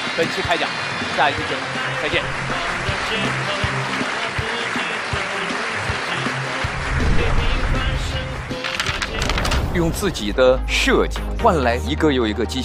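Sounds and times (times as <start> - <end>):
sustained applause from a large studio audience: 0.0 - 9.5
speech: 0.2 - 4.2, 9.8 - 12.6.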